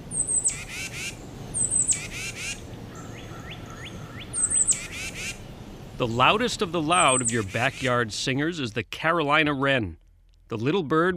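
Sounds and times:
constant low rumble: 0.0s - 11.1s
Tufted Titmouse calling: 0.1s - 5.4s, 6.8s - 8.0s
speech: 6.0s - 11.1s.

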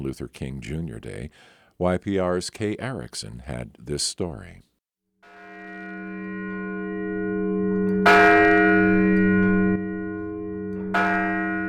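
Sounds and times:
speech: 0.0s - 4.7s
large ceremonial bell ringing outdoors in a park: 5.3s - 11.6s.

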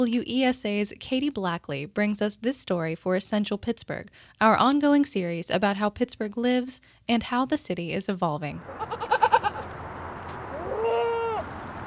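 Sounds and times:
speech: 0.0s - 9.2s
goats bleating: 8.7s - 9.7s.

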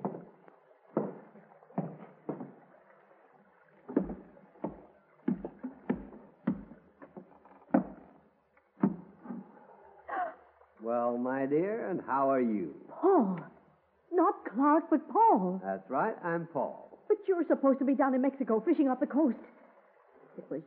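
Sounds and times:
hollow wooden knocks and bumps of a small boat tying up alongside: 0.0s - 2.6s, 3.9s - 8.2s, 8.8s - 9.6s
water: 0.0s - 20.6s
speech: 11.5s - 13.5s, 14.6s - 19.5s, 20.4s - 20.6s.

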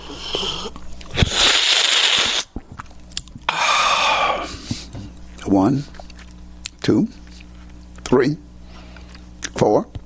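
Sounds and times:
person slurping olive oil from a teaspoon while sucking in air: 0.0s - 2.6s, 3.5s - 4.6s
speech: 5.5s - 6.0s, 6.9s - 7.2s, 8.1s - 8.4s, 9.6s - 10.0s.

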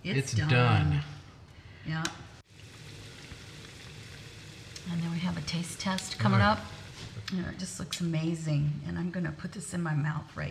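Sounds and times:
speech: 0.0s - 1.2s, 1.8s - 2.3s, 4.8s - 10.4s
small pieces of food frying in hot oil: 2.4s - 8.0s.

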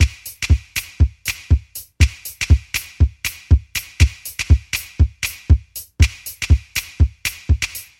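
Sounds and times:
hi-hats: 0.0s - 7.9s
kick drum: 0.0s - 7.9s
handclaps: 4.0s - 7.9s.

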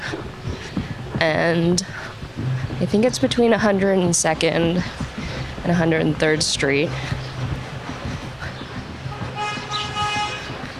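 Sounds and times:
street traffic rumbling: 0.0s - 10.7s
speech: 1.2s - 2.0s, 2.8s - 5.0s, 5.6s - 7.2s
car horn honking: 9.2s - 10.5s.

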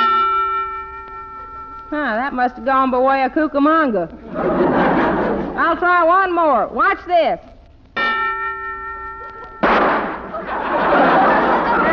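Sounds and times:
ringing metallic tone: 0.0s - 3.6s, 8.0s - 10.4s
speech: 1.9s - 4.8s, 5.7s - 7.5s
laughter: 4.2s - 5.6s, 9.1s - 9.6s, 10.2s - 11.9s
gun going off: 9.6s - 10.3s.

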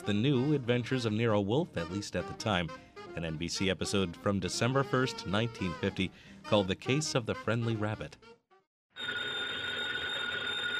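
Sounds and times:
speech: 0.0s - 8.4s
telephone bell ringing in a radio drama: 9.0s - 10.7s.

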